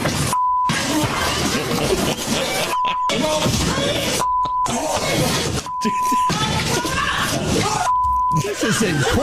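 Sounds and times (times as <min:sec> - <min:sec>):
flat censor beeps over courtroom video audio: 0:00.3 - 0:00.8, 0:04.1 - 0:04.8, 0:05.6 - 0:06.4, 0:07.8 - 0:08.6
laughter: 0:00.7 - 0:09.2
people shouting: 0:02.6 - 0:09.2
speech: 0:08.7 - 0:09.2.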